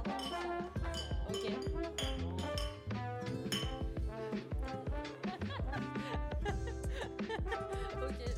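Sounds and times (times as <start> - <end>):
glass clinking in an organic cosmetics laboratory: 0.1 - 4.0
laughter: 5.0 - 8.3.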